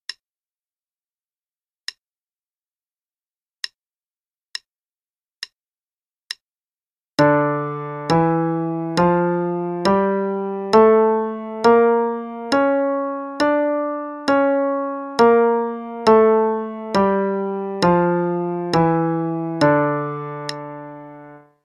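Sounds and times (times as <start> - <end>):
D harmonic minor scale: 7.2 - 21.6.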